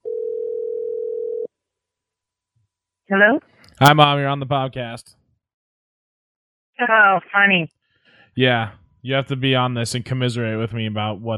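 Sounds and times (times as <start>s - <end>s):
telephone dial tone: 0.0s - 1.5s
speech: 3.1s - 5.2s, 6.8s - 7.8s, 8.4s - 11.3s.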